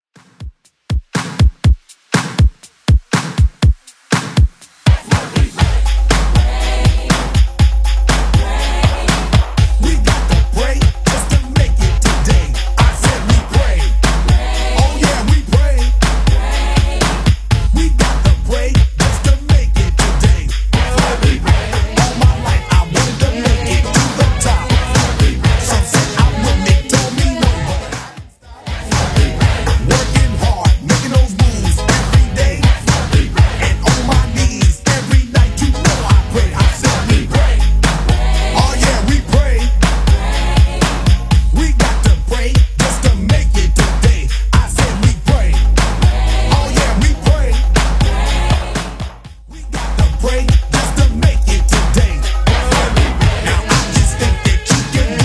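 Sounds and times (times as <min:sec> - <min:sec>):
simple 90s Redrum drum machine beat at 121 bpm: 0:00.1 - 0:55.2.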